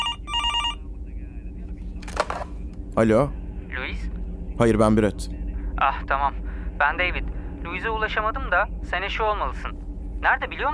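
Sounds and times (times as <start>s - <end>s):
telephone ringing in short bell bursts: 0.0s - 0.8s
low rumbling background: 0.0s - 10.7s
speech: 3.0s - 3.4s, 4.6s - 10.7s.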